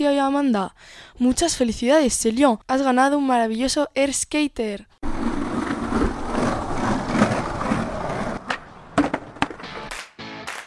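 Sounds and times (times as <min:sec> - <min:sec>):
speech: 0:00.0 - 0:05.0
skateboard wheels rolling over a rough road: 0:05.0 - 0:10.0
skateboard clacking and thudding on pavement: 0:07.0 - 0:10.6.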